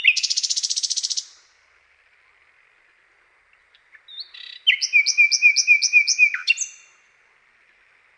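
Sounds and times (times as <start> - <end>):
common nightingale singing with buzzing rattle and whistled notes: 0.0 - 1.5, 3.5 - 7.0.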